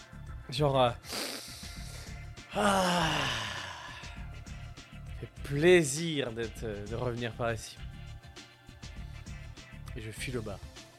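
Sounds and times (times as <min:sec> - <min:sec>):
speech: 0:00.5 - 0:01.2, 0:02.5 - 0:03.5, 0:05.2 - 0:07.9, 0:10.0 - 0:10.7
person taking a big deep breath: 0:01.0 - 0:04.6.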